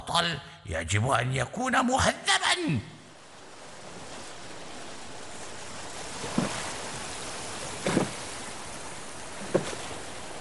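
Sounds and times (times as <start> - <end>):
speech: 0.1 - 3.0
steady wash of sea water: 3.1 - 10.4.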